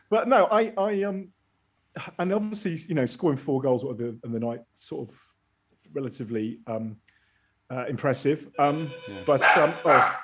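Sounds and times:
speech: 0.1s - 1.4s, 2.0s - 5.3s, 5.9s - 7.1s, 7.7s - 10.2s
dog barking with a whiny yelping edge: 9.4s - 10.2s.

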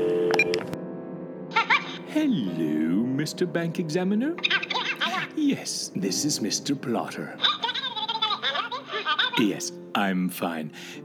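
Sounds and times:
keypad tones: 0.1s - 0.8s
speech: 2.2s - 4.6s, 5.4s - 7.6s, 9.4s - 11.0s
laughter: 4.5s - 5.5s, 7.4s - 9.6s.

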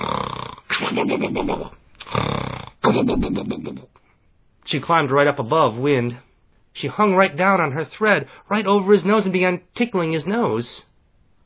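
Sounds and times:
storyteller's voice imitating snoring: 0.0s - 3.9s
speech: 1.0s - 2.3s, 2.9s - 4.0s, 4.7s - 10.9s.

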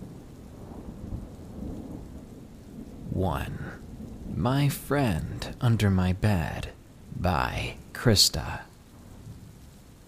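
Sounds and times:
dense rain of a thunderstorm: 0.0s - 10.0s
low thunder rumbling and rolling: 0.0s - 10.0s
speech: 3.2s - 3.8s, 4.4s - 8.7s.

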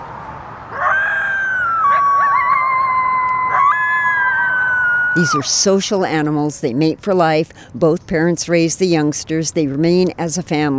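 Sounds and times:
coyotes howling: 0.7s - 5.7s
speech: 5.2s - 10.7s.

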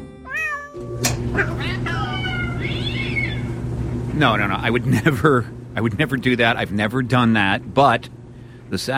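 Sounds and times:
steady low mechanical rumble: 0.0s - 8.9s
several cats yowling and meowing: 0.3s - 3.6s
speech: 1.0s - 2.0s, 4.2s - 8.9s.

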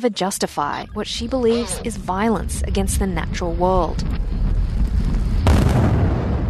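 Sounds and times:
speech: 0.0s - 4.4s
deep rumbling background: 0.6s - 6.4s
heavy mine blast explosion: 5.4s - 6.4s.

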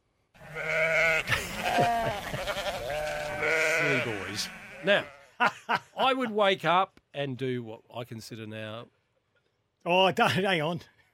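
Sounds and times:
goats bleating: 0.4s - 5.4s
laughter: 1.1s - 2.8s, 5.4s - 6.0s
speech: 4.8s - 9.0s, 9.8s - 11.0s.

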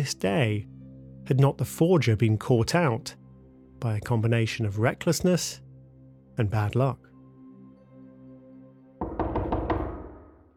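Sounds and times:
speech: 0.0s - 3.2s, 3.8s - 5.6s, 6.4s - 7.1s
firm knocks on a door: 9.0s - 10.4s.

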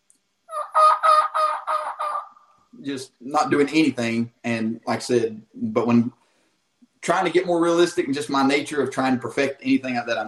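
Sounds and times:
imitated wild turkey yelps: 0.5s - 2.6s
speech: 2.8s - 6.2s, 7.0s - 10.2s.

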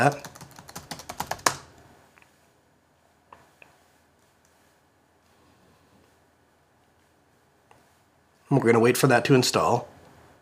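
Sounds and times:
speech: 0.0s - 0.3s, 8.5s - 9.9s
computer keyboard typing: 0.0s - 1.7s.

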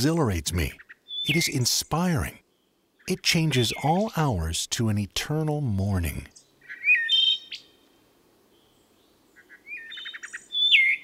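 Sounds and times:
speech: 0.0s - 2.4s, 3.1s - 6.4s
wood thrush singing: 0.0s - 7.7s, 8.6s - 11.0s.

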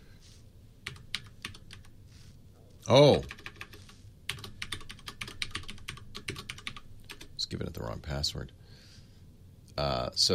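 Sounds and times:
computer keyboard keystrokes typing an administrator password: 0.8s - 1.9s, 3.2s - 7.3s
speech: 2.9s - 3.4s, 7.5s - 8.6s, 9.8s - 10.3s.

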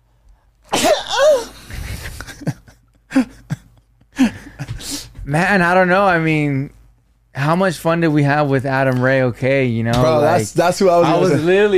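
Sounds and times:
person sneezing: 0.7s - 1.6s
speech: 5.3s - 6.8s, 7.4s - 11.7s.

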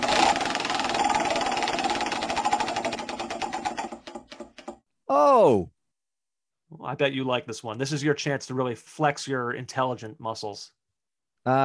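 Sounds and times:
prize wheel clicker ticking as the wheel is spun: 0.0s - 4.8s
speech: 5.1s - 5.7s, 6.7s - 10.8s, 11.4s - 11.6s.

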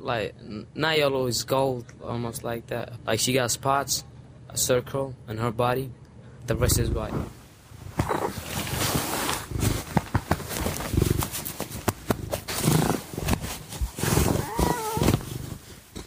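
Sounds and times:
speech: 0.0s - 7.4s
cat purring while being petted: 6.5s - 7.4s, 8.0s - 16.0s
soft rustling and brushing from petting a cat: 8.0s - 15.8s.

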